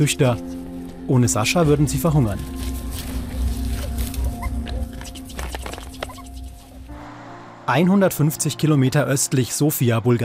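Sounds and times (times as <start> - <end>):
speech: 0.0 - 2.8, 7.7 - 10.2
rustles and clicks: 2.5 - 6.9
abandoned puppies squeaking and whimpering at a rubbish dump: 3.6 - 6.8.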